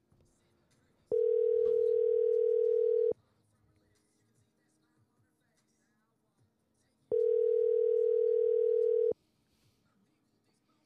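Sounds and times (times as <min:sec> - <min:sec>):
faint noise: 0:00.0 - 0:10.8
phone's outgoing ringback tone as a call is placed: 0:01.1 - 0:03.2, 0:07.1 - 0:09.2.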